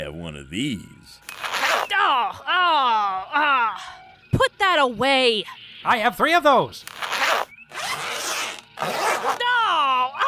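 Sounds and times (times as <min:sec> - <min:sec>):
speech: 0:00.0 - 0:01.2, 0:02.0 - 0:03.6, 0:04.6 - 0:07.0
clothing zippers being zipped up: 0:01.3 - 0:01.9, 0:06.9 - 0:09.4.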